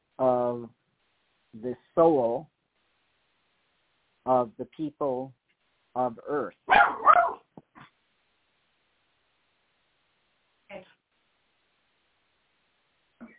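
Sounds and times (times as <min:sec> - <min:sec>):
speech: 0:00.2 - 0:00.8, 0:01.5 - 0:02.5, 0:04.2 - 0:05.4, 0:06.0 - 0:07.3
small dog yapping and yipping: 0:06.7 - 0:07.5.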